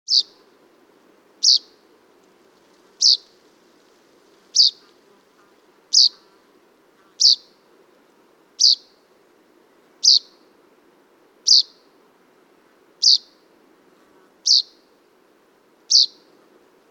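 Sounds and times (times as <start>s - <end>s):
Fringilla coelebs common chaffinch calling: 0.1s - 0.4s, 1.4s - 1.8s, 3.0s - 3.3s, 4.5s - 5.0s, 5.9s - 6.3s, 7.1s - 7.6s, 8.6s - 9.0s, 10.0s - 10.4s, 11.4s - 11.9s, 13.0s - 13.4s, 14.4s - 14.9s, 15.9s - 16.3s.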